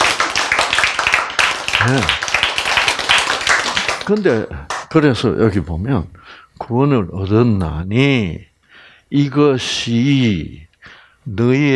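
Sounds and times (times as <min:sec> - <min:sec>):
audience clapping: 0:00.0 - 0:05.2
speech: 0:01.8 - 0:02.2, 0:04.1 - 0:08.5, 0:09.1 - 0:11.7.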